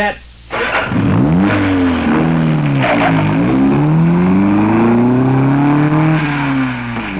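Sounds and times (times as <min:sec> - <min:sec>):
speech: 0:00.0 - 0:01.0
car engine starting and revving: 0:00.5 - 0:07.1.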